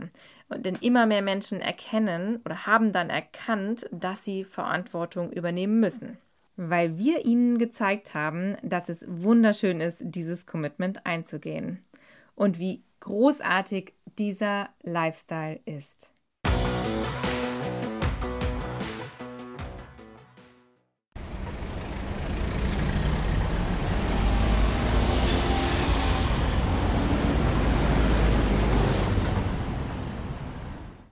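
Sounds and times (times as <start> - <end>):
speech: 0.2 - 16.0
music: 16.4 - 20.9
continuous engine rumble: 21.2 - 31.1
loud roar of city car traffic with masses of cars crawling: 21.2 - 31.1
passing vehicles: 21.2 - 31.1.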